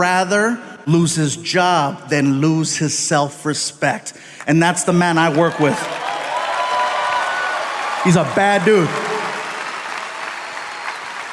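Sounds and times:
speech: 0.0 - 6.0, 8.0 - 9.1
audience applause: 5.2 - 11.3.

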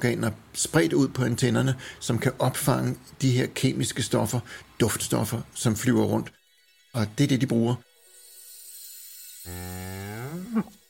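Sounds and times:
speech: 0.0 - 7.9, 9.4 - 10.8
single cow mooing: 9.5 - 10.8.

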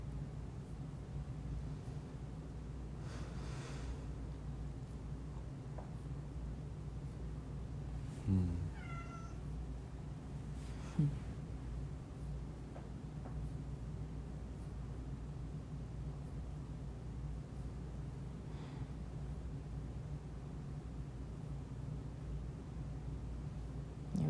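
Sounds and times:
steady low droning hum: 0.0 - 24.2
female cat meowing: 8.7 - 9.4.

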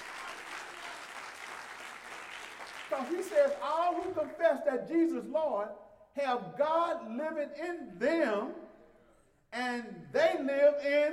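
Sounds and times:
church congregation clapping hands in praise: 0.0 - 4.6
speech: 2.9 - 8.6, 9.5 - 11.1.

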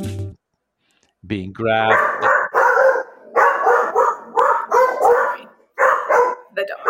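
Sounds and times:
speech: 1.3 - 2.3
guard dog barking at a person near the house: 1.9 - 6.8.

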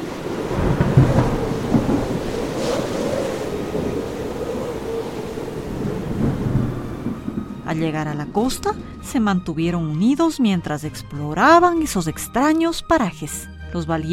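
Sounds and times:
rain or surf-like noise in a storm at sea: 0.0 - 9.4
deep rolling thunder in a storm at sea: 0.0 - 10.4
speech: 7.8 - 14.1.

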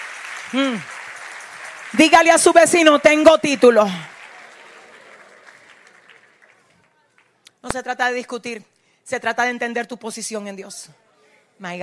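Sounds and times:
congregation applauding: 0.0 - 7.3
speech: 0.5 - 1.0, 1.9 - 4.1, 7.6 - 11.0, 11.6 - 11.8.

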